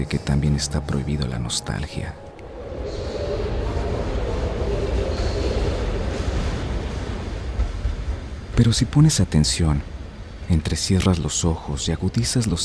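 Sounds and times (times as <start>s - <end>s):
speech: 0.0s - 2.3s, 8.6s - 12.6s
train wheels rumbling on track at an old railway station: 0.0s - 12.6s
high metallic squeals: 2.4s - 6.5s.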